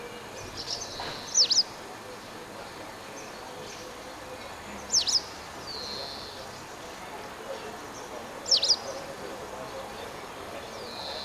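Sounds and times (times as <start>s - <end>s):
white wagtail Motacilla alba calling: 0.0s - 11.2s.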